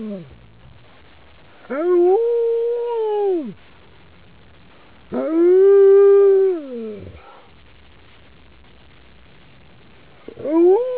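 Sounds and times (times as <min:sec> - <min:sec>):
husky howling: 0:01.7 - 0:03.6, 0:05.1 - 0:07.2, 0:10.3 - 0:10.9.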